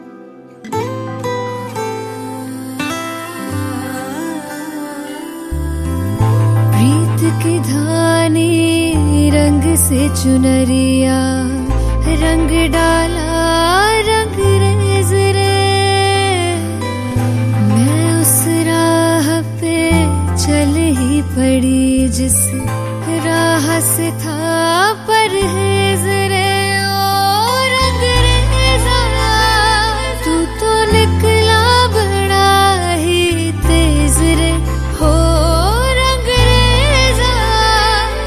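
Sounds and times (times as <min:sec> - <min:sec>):
ringtone song with a female voice: 0:02.0 - 0:38.2.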